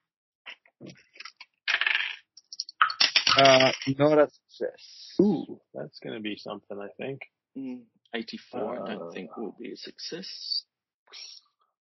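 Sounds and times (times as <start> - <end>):
dice clattering and tumbling across a hard tabletop: 1.7 - 2.3
speech: 3.4 - 11.4.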